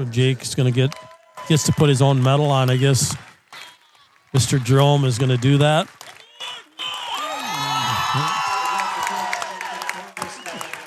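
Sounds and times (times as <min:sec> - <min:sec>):
speech: 0:00.0 - 0:03.3, 0:04.3 - 0:06.0, 0:08.2 - 0:08.4
loud crowd roaring and cheering at a basketball game: 0:00.0 - 0:10.8
scattered whoops and claps: 0:00.7 - 0:10.8
basketball player yelling to the crowd: 0:06.2 - 0:10.2.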